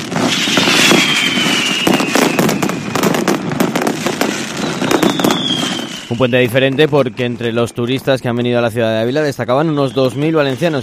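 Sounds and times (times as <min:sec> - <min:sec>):
mascletà firecracker barrage during the fallas in Ávila: 0:00.0 - 0:10.8
high whistle gliding downward: 0:00.2 - 0:03.0, 0:04.5 - 0:06.7, 0:09.5 - 0:10.8
speech: 0:06.1 - 0:10.8.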